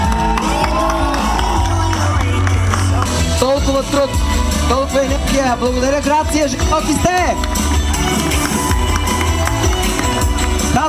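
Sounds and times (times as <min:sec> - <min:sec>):
large crowd clapping: 0:00.0 - 0:03.3, 0:06.6 - 0:10.8
speech: 0:03.9 - 0:08.7.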